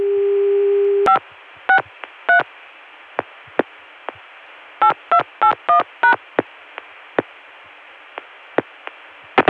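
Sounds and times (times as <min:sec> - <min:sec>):
steady telephone tone: 0:00.0 - 0:01.2
low telephone line hiss: 0:00.0 - 0:09.4.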